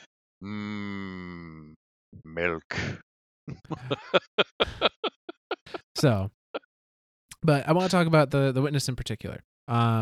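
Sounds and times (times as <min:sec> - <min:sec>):
speech: 0:00.4 - 0:00.8, 0:02.4 - 0:03.0, 0:03.7 - 0:04.7, 0:06.0 - 0:06.4, 0:07.4 - 0:10.0
person imitating a dairy cow with a long low moo: 0:00.4 - 0:01.7
laughter: 0:03.5 - 0:06.2.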